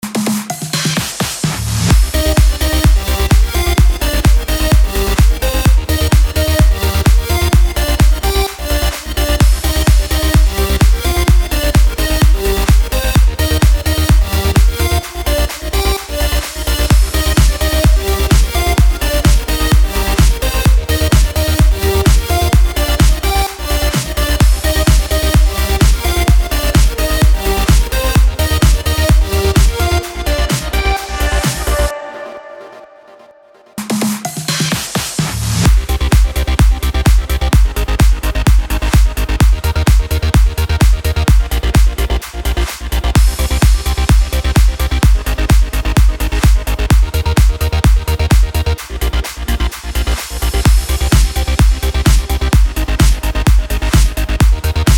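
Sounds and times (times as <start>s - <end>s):
electro house music: 0.0s - 54.9s.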